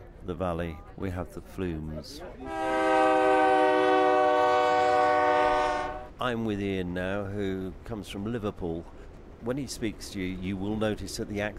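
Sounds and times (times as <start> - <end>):
speech: 0.2 - 2.6, 6.2 - 11.5
train cars rolling in a mountain valley: 2.2 - 11.5
train horn blast: 2.4 - 6.1.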